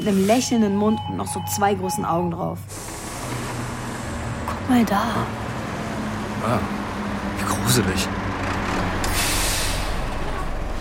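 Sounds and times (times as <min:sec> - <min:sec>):
speech: 0:00.0 - 0:03.5, 0:04.7 - 0:05.4, 0:06.4 - 0:06.8, 0:07.4 - 0:08.2
truck engine rumbling at a filling station: 0:00.0 - 0:10.8
truck air-brake hiss at a filling station: 0:09.1 - 0:10.0.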